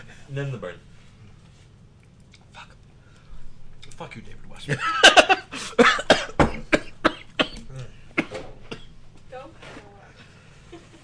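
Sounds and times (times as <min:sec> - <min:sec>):
speech: 0:00.3 - 0:00.9, 0:04.0 - 0:06.0
person coughing: 0:05.0 - 0:09.0.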